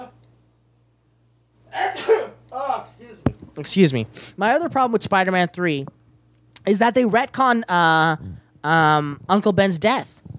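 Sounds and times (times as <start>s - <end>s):
person sneezing: 1.7s - 2.4s
speech: 3.6s - 6.0s, 6.6s - 10.2s.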